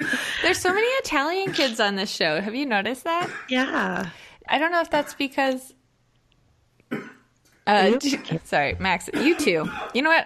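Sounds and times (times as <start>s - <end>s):
single short throaty cough: 0.0s - 1.8s, 3.2s - 3.6s, 6.9s - 7.3s, 8.0s - 8.4s, 9.1s - 10.0s
speech: 0.5s - 5.8s, 7.7s - 10.2s.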